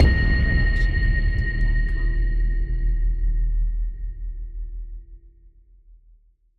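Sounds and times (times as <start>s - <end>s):
cinematic hit: 0.0s - 3.6s.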